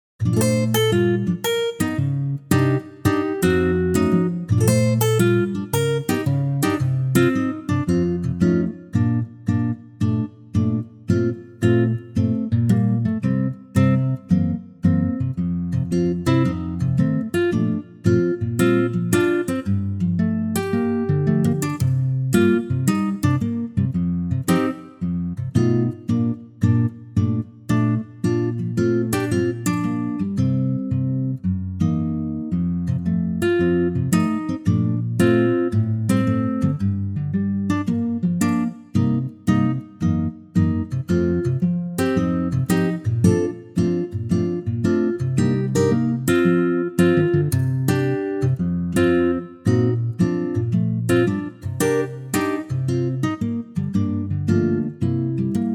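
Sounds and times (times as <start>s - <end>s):
acoustic guitar in B flat: 0.2s - 55.7s.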